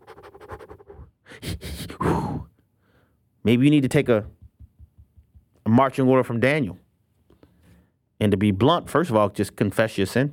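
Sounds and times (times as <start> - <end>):
person imitating heavy breathing as if gasping for thin air: 0.0 - 3.1
speech: 1.4 - 2.2, 3.4 - 4.4, 5.8 - 6.8, 8.2 - 10.3.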